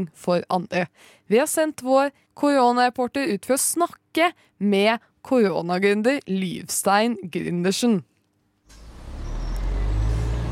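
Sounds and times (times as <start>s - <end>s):
speech: 0.0s - 8.1s
city bus heavy engine rumbling in Oslo, Norway: 8.7s - 10.5s.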